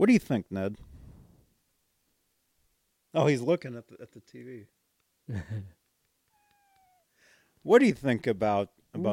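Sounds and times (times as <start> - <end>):
speech: 0.0 - 0.9, 3.1 - 5.8, 7.6 - 9.1
short two-part cat meow: 6.3 - 7.1.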